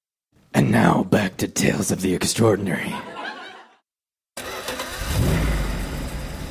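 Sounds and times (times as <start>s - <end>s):
speech: 0.5s - 3.2s
laughter: 2.7s - 3.8s
car engine starting and idling: 4.4s - 6.4s.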